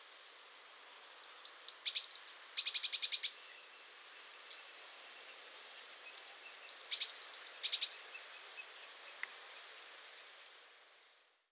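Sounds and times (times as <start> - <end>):
Eurasian blue tit Cyanistes caeruleus high thin notes and buzzy churring rattle: 1.3 - 3.4, 6.3 - 8.1.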